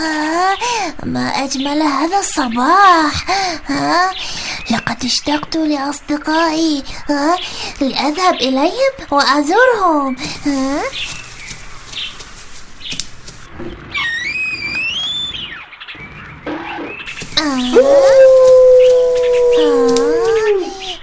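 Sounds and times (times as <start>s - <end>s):
speech: 0.0s - 11.2s, 17.4s - 20.1s
wolf howling: 17.4s - 21.0s.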